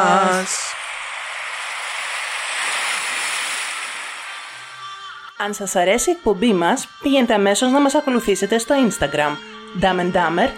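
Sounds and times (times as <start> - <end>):
sea waves: 0.0 - 5.3
speech: 0.4 - 0.6, 5.4 - 10.5.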